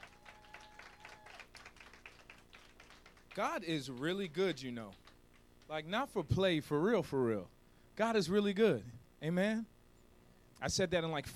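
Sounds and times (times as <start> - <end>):
crowd clapping: 0.0 - 5.7
speech: 3.4 - 5.0, 5.7 - 9.7, 10.6 - 11.3.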